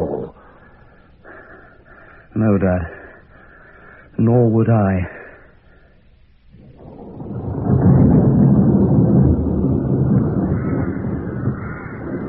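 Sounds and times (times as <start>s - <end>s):
speech: 2.4s - 3.0s, 4.2s - 5.2s
deep rolling rumble of thunder: 6.4s - 12.2s
blustery wind roaring: 6.5s - 12.2s.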